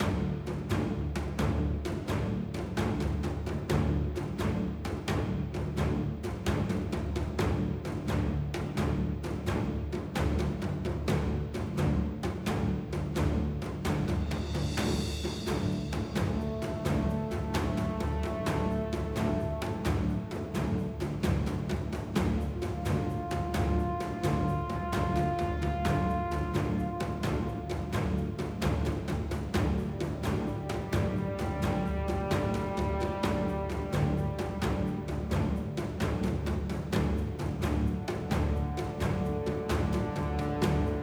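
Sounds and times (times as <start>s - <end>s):
action role-playing game music loop: 0.0s - 41.0s.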